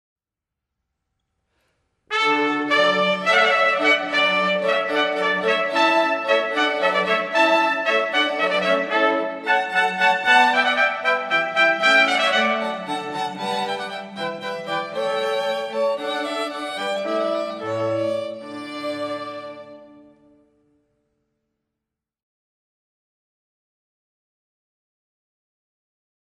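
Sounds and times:
string quartet playing a hornpipe: 2.1s - 20.4s.

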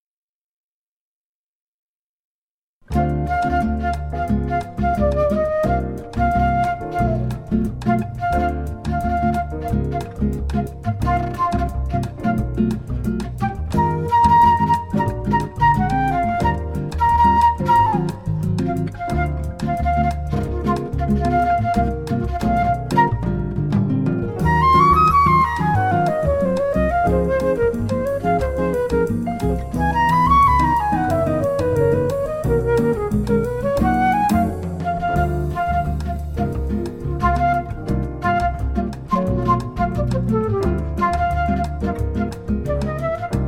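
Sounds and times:
classical jazz music: 2.9s - 43.4s.

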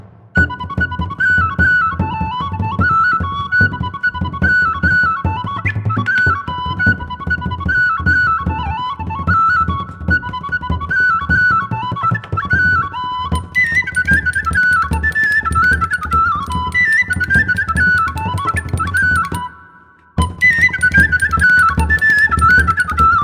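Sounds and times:
Irish whistle playing folk dance tunes: 0.4s - 9.6s, 10.2s - 23.2s.

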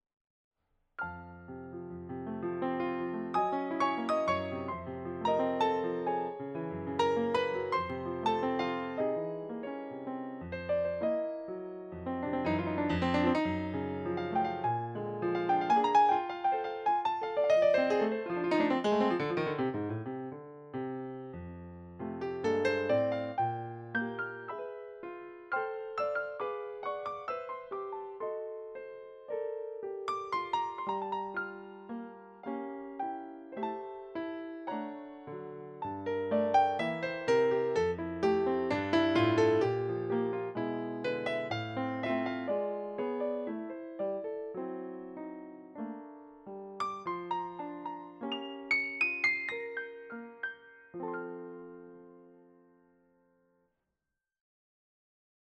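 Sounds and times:
piano piece: 1.0s - 53.6s.

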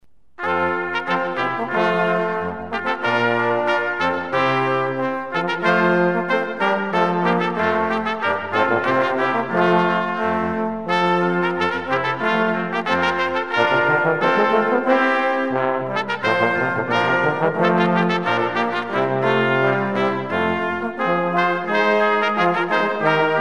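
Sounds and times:
brass quartet playing ballet music: 0.4s - 23.4s.

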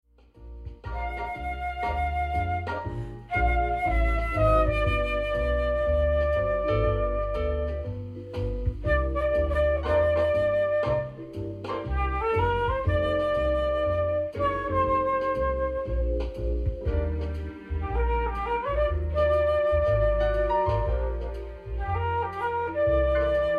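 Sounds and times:
jazz flute: 0.2s - 23.5s.

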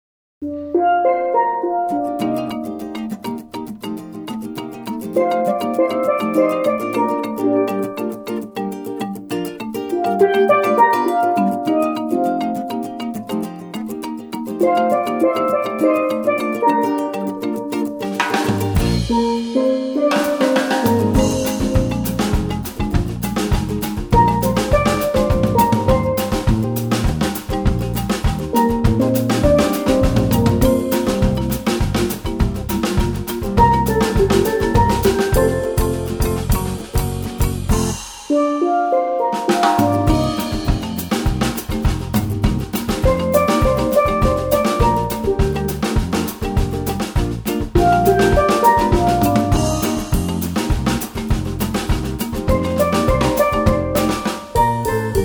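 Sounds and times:
steel drum band playing: 0.4s - 55.2s.

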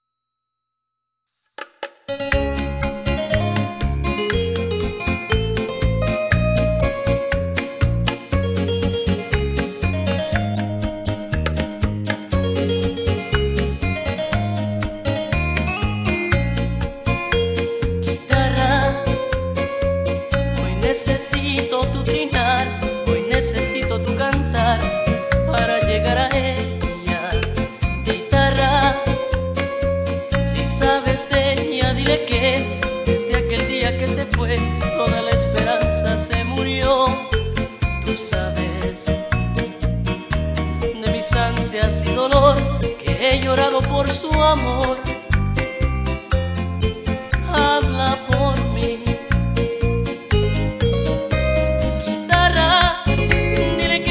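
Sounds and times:
bachata guitar: 2.1s - 54.0s.

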